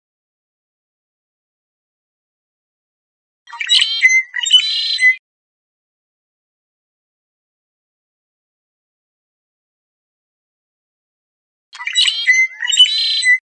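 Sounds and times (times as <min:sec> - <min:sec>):
red-winged blackbird singing buzzy trilled phrases: 0:03.5 - 0:05.2, 0:11.8 - 0:13.4.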